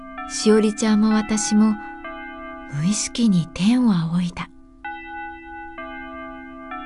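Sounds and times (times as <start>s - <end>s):
school chime ringing through a school building: 0.0s - 6.8s
speech: 0.3s - 1.9s, 2.7s - 4.5s.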